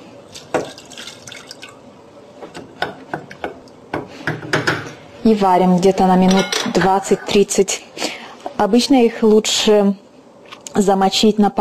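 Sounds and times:
water pouring into a pot of mung beans: 0.3s - 1.8s
speech: 5.3s - 8.0s, 8.6s - 10.0s, 10.8s - 11.5s.

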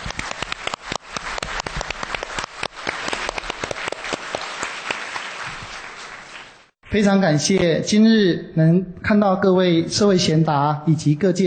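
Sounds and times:
audience applause at a seminar on global warming and climate change: 0.0s - 6.7s
speech: 6.9s - 11.4s.

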